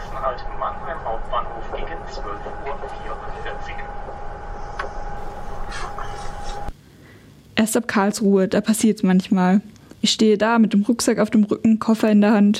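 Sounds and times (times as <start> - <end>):
indistinct voices: 0.0 - 6.7
train carriage interior rumbling while riding: 0.0 - 6.7
faint whining hum: 0.0 - 12.5
speech: 7.6 - 12.5.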